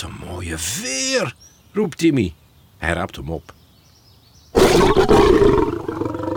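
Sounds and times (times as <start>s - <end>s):
speech: 0.0s - 3.6s
lion roaring: 4.6s - 6.3s.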